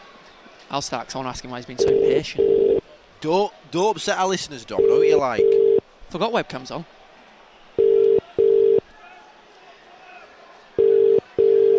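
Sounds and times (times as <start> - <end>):
speech: 0.7 - 2.6, 3.2 - 7.0
telephone ringback tone of an unanswered call: 1.8 - 2.8, 4.8 - 5.8, 7.8 - 8.8, 10.8 - 11.7.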